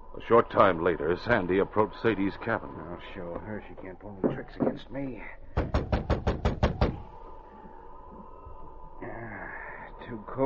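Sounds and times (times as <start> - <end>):
quiet low hum: 0.0 - 10.4
speech: 0.2 - 5.9, 10.1 - 10.4
knocking on a wooden cabin door: 5.6 - 7.1.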